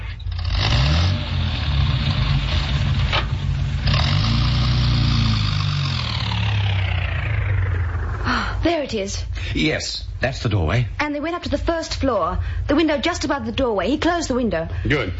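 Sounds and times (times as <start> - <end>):
car engine revving as car reverses: 0.0 - 9.0
speech: 8.9 - 15.1.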